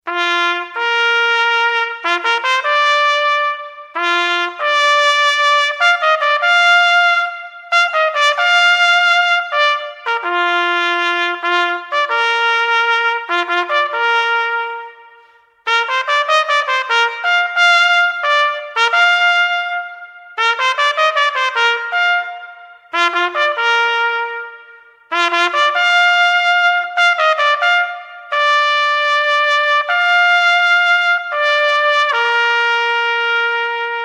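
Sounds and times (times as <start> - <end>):
trumpet call: 0.0 - 34.0.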